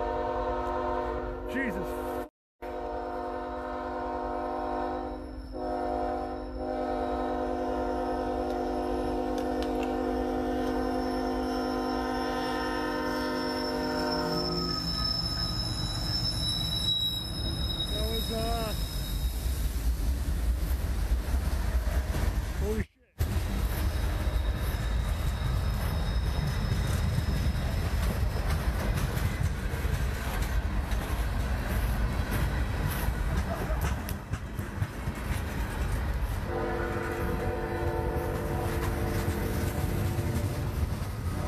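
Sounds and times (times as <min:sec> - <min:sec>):
train horn: 0:00.0 - 0:14.9, 0:36.4 - 0:41.4
speech: 0:01.5 - 0:02.1
train rushing past at speed without stopping: 0:04.4 - 0:41.4
brief metallic train wheel squeals: 0:10.8 - 0:19.8, 0:23.8 - 0:28.6.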